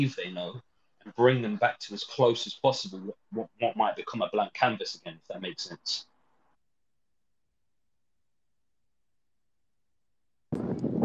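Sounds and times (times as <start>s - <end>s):
speech: 0.0s - 6.1s
wind buffeting microphone outdoors: 10.5s - 11.0s.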